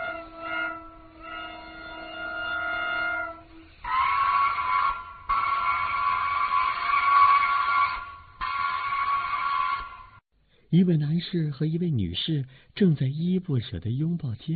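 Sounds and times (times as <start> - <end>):
brassy train whistle blasts: 0.0 - 10.2
departing train horn: 0.0 - 10.2
speech: 10.7 - 14.5.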